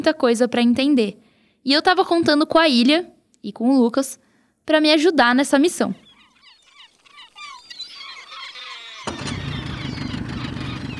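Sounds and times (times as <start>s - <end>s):
speech: 0.0s - 6.0s
birds chirping: 5.7s - 10.9s
boat motor running: 6.6s - 10.9s.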